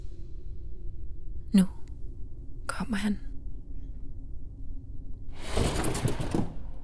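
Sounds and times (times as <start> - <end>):
low steady rumble: 0.0 - 6.8
speech: 1.5 - 1.8, 2.9 - 3.3
door kicked open from inside: 5.4 - 6.8.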